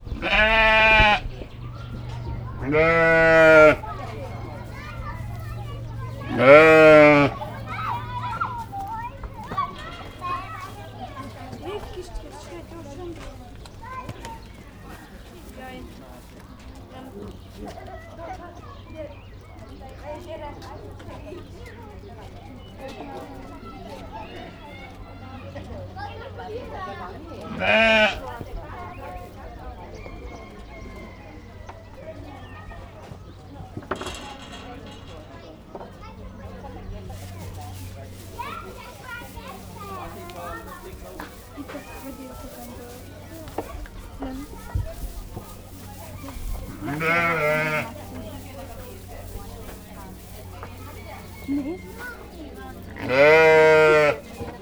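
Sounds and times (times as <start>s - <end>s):
sheep bleating in a farmyard at a zoo: 0.1s - 8.8s, 27.5s - 28.2s, 46.7s - 48.0s, 52.9s - 54.3s.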